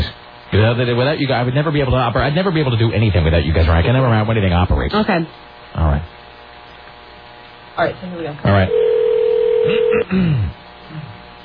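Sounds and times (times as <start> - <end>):
speech: 0.6 - 6.2, 7.8 - 8.9, 9.6 - 11.2
steady electronic telephone tone: 8.7 - 10.0.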